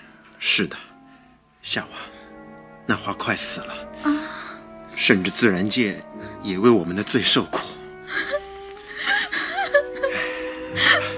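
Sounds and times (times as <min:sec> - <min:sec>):
speech: 0:00.4 - 0:00.9, 0:01.6 - 0:02.2, 0:02.9 - 0:04.3, 0:05.0 - 0:08.2
woman crying with shaky sobs and gasping breaths: 0:08.0 - 0:11.1.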